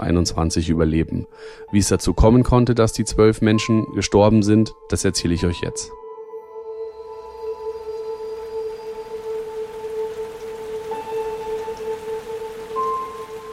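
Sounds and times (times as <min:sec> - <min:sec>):
speech: 0:00.0 - 0:06.0
heavy rain pouring down in Rhineland-Palatinate Germany: 0:07.6 - 0:13.5.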